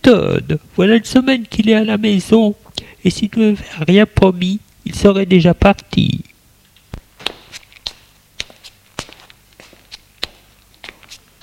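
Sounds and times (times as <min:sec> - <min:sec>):
faint hiss: 0:00.0 - 0:11.4
speech: 0:00.1 - 0:06.3
footsteps of a woman walking: 0:06.8 - 0:11.4.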